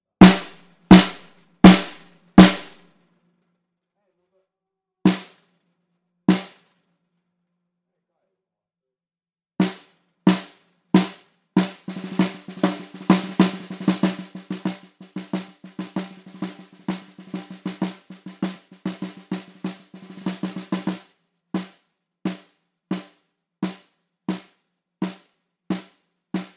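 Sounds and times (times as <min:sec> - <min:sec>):
percussion instruments at a soundcheck through the lower microphone: 0:00.0 - 0:02.8, 0:05.1 - 0:05.3, 0:06.3 - 0:06.6, 0:09.6 - 0:21.0, 0:22.3 - 0:26.5.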